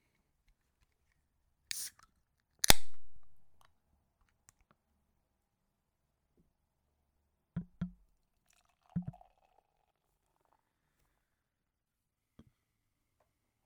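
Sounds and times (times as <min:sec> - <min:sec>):
beer can cracking open with a fizzing hiss: 0:01.7 - 0:02.0, 0:02.6 - 0:03.6
hollow glugs of beer being poured: 0:08.5 - 0:09.6.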